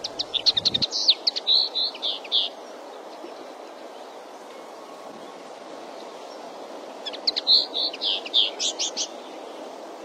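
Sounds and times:
common linnet singing: 0.0 - 10.0.

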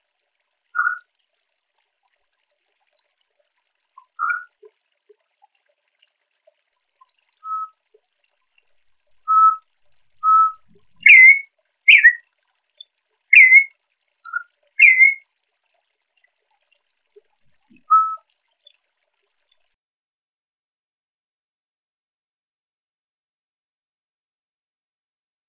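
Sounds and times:
campo troupial whistling to fire up a male: 4.2 - 4.5, 7.4 - 7.8, 9.2 - 9.6, 10.2 - 12.2, 13.3 - 13.7, 14.3 - 15.2, 17.8 - 18.2.

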